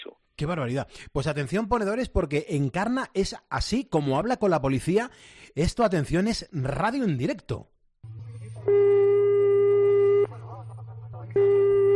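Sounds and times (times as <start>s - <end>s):
speech: 0.4s - 7.7s
constant low hum: 8.0s - 11.9s
telephone ringback tone on an unanswered call to the police: 8.6s - 10.3s, 11.4s - 11.9s.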